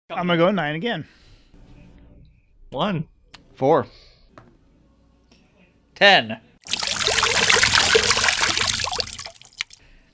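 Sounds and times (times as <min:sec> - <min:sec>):
speech: 0:00.1 - 0:01.2, 0:02.7 - 0:04.1, 0:06.0 - 0:06.8
water rushing in: 0:06.7 - 0:09.8.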